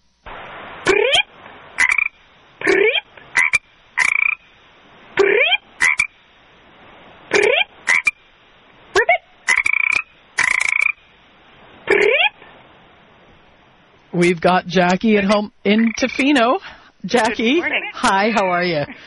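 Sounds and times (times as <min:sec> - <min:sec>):
frog croaking with rising raspy calls: 0:00.8 - 0:04.6, 0:05.2 - 0:06.2, 0:07.3 - 0:08.2, 0:08.9 - 0:11.2, 0:11.8 - 0:12.5, 0:15.2 - 0:18.9
speech: 0:14.2 - 0:19.0.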